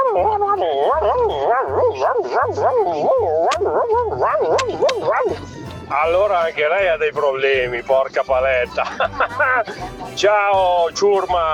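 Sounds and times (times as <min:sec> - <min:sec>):
Labrador dog whimpering and yipping in its sleep: 0:00.0 - 0:05.9
low pulsing hum: 0:00.0 - 0:07.8
laughter: 0:00.0 - 0:11.5
speech: 0:00.2 - 0:11.5.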